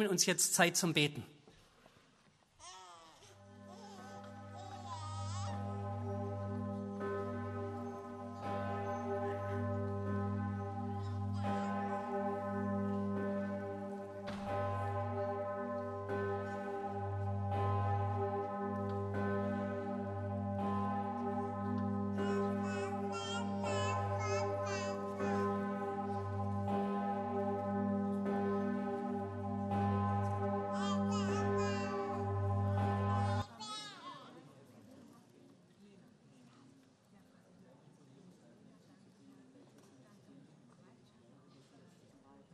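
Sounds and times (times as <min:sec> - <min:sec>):
speech: 0:00.0 - 0:01.4
church bells ringing during a church prayer service: 0:03.4 - 0:33.8.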